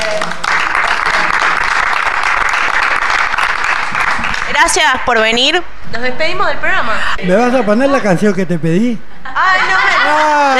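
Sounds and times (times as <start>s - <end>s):
audience applause as a show signs off: 0.0s - 4.8s
speech: 4.6s - 10.5s.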